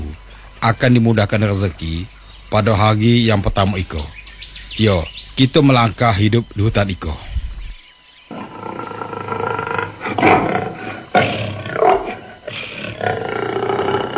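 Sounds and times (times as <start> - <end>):
speech: 0.6 - 4.2, 4.8 - 7.3
tiger roaring with deep growling tones: 8.3 - 14.1.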